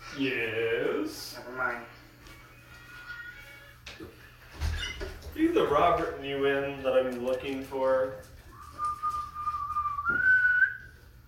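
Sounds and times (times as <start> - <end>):
speech: 0.2 - 2.0, 5.4 - 8.3
person whistling to call a dog inside: 8.5 - 11.0.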